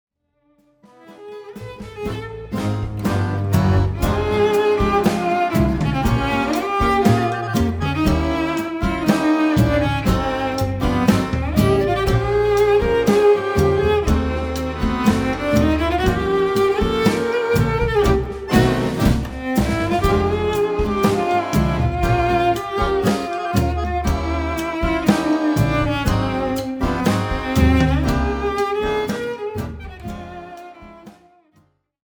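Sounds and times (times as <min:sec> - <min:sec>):
cello playing gypsy tango: 0:01.0 - 0:31.2.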